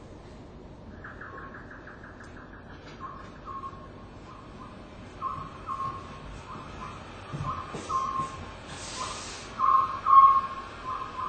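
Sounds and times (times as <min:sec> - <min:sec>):
Oriental scops owl calling near the upper Tama River on Mount Mitake: 0:01.0 - 0:11.2
hiss: 0:04.0 - 0:11.2.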